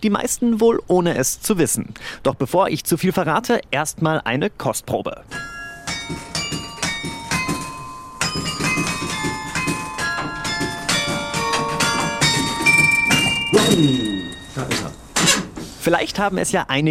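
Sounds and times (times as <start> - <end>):
speech: 0.0 - 6.3, 13.8 - 14.0, 15.9 - 16.8
church tower carillon playing a brisk bouncy tune: 5.3 - 15.0.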